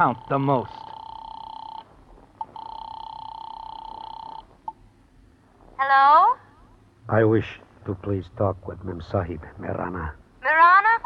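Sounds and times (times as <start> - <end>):
speech: 0.0 - 0.8, 7.1 - 10.7
electronic telephone tone in a drugstore phone booth: 0.0 - 4.8.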